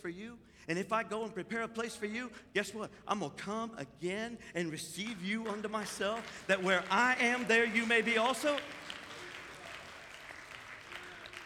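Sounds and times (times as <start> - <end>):
speech: 0.0 - 8.9
large indoor crowd applauding: 5.1 - 11.4.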